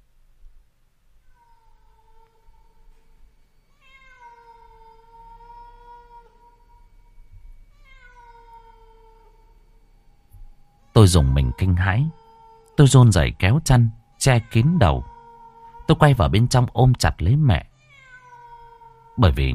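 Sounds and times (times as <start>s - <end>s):
cat meowing mournfully at night in the countryside: 3.7s - 7.0s, 7.6s - 9.6s, 10.7s - 16.3s, 17.7s - 19.5s
speech: 11.0s - 12.2s, 12.8s - 15.1s, 15.9s - 17.7s, 19.2s - 19.5s.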